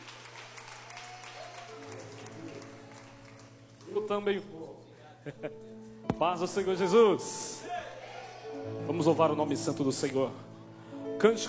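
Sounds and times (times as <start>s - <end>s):
crowd clapping: 0.0s - 4.4s
speech: 4.1s - 4.6s, 5.2s - 7.6s, 8.9s - 10.5s, 11.2s - 11.4s.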